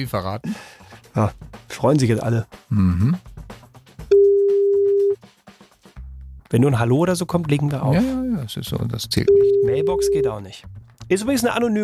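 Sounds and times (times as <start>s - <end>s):
speech: 0.0s - 3.3s, 6.5s - 11.8s
ringback tone from an outgoing telephone call: 4.1s - 5.2s, 9.3s - 10.3s.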